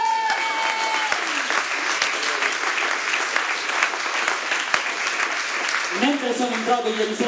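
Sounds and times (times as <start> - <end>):
large audience applause: 0.0 - 7.2
speech: 6.2 - 7.2.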